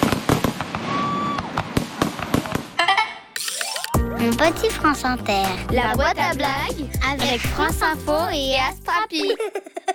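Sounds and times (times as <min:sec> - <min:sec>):
fireworks crackling and banging: 0:00.0 - 0:02.8
firework whistling: 0:00.8 - 0:01.7
speech: 0:04.3 - 0:09.8
laughter: 0:09.1 - 0:09.9.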